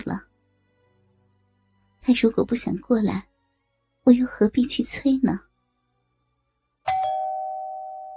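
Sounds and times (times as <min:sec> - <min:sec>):
speech: 0:00.1 - 0:00.3, 0:02.1 - 0:03.3, 0:04.0 - 0:05.5
doorbell chiming two ringing tones: 0:06.9 - 0:08.1.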